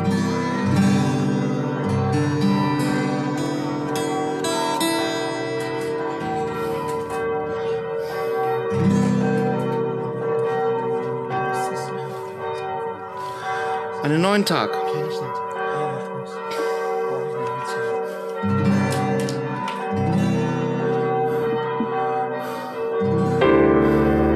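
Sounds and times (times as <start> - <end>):
several church bells pealing: 0.0 - 24.3
speech: 14.1 - 15.1.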